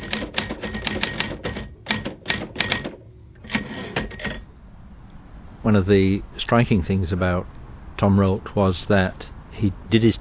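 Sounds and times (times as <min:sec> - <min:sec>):
very big manual typewriter keys clacking: 0:00.0 - 0:04.4
speech: 0:05.7 - 0:10.2.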